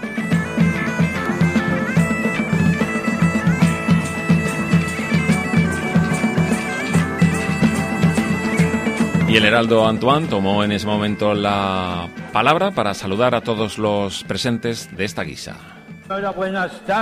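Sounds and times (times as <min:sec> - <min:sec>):
street music group playing at a historical festival: 0:00.0 - 0:17.0
speech: 0:09.3 - 0:17.0.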